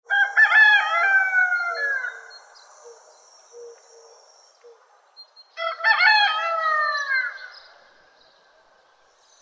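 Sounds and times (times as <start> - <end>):
rooster crowing: 0.1 - 2.2, 5.6 - 7.4.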